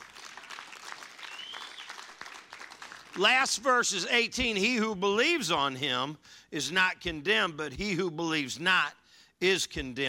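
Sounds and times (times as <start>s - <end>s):
audience applauding: 0.0s - 3.4s
speech: 3.2s - 10.0s.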